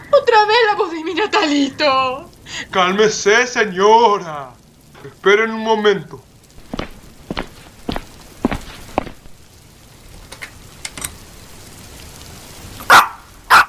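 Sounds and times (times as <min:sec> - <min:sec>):
speech: 0:00.2 - 0:06.3
female dog barking: 0:12.8 - 0:13.6.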